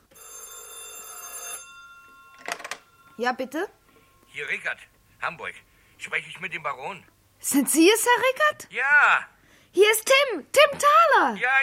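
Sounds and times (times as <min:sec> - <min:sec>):
telephone bell ringing: 0:00.0 - 0:04.7
faint tonal hum: 0:01.6 - 0:06.4
speech: 0:03.2 - 0:03.8, 0:04.4 - 0:11.6.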